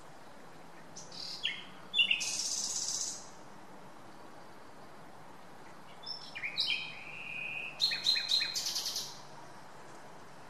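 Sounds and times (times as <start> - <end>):
Common nightingale Luscinia megarhynchos song with whistle and sharp repeated notes: 0.2 - 3.4, 5.6 - 9.3.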